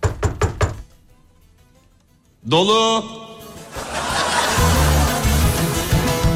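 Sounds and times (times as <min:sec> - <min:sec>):
knocking on a toilet stall door: 0:00.0 - 0:00.9
speech: 0:02.4 - 0:03.2
laughter: 0:03.5 - 0:06.3.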